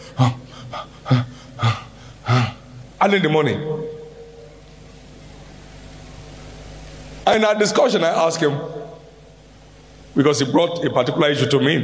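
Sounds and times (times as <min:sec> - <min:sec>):
voice imitating a wealthy man's labored breathing: 0:00.0 - 0:03.0
speech: 0:00.2 - 0:01.3, 0:03.0 - 0:03.9, 0:07.3 - 0:08.8, 0:10.2 - 0:11.8.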